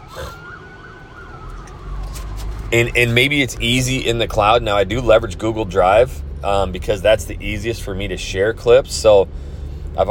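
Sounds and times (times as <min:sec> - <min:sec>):
ambulance siren wailing: 0:00.0 - 0:04.6
passing traffic rumble: 0:00.0 - 0:10.0
speech: 0:02.7 - 0:10.0.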